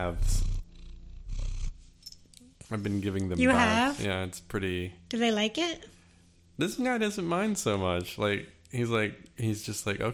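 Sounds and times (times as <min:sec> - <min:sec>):
speech: 0:00.0 - 0:00.5, 0:02.7 - 0:06.0, 0:06.6 - 0:10.1
cat purring on a person's lap: 0:00.0 - 0:01.9.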